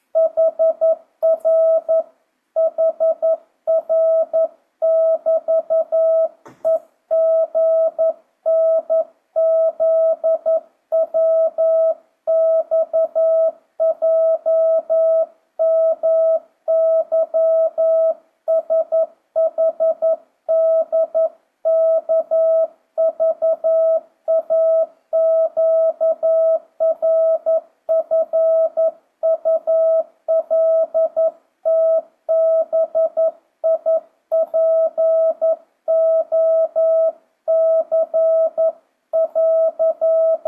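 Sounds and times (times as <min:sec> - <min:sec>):
Morse code tones at 11 words per minute: 0:00.2 - 0:02.0, 0:02.6 - 0:40.4.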